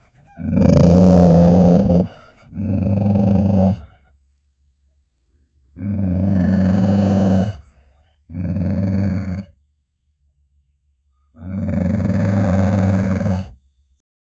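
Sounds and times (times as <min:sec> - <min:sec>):
big dog growling: 0:00.0 - 0:04.0, 0:05.8 - 0:07.7, 0:08.3 - 0:09.6, 0:11.4 - 0:13.6.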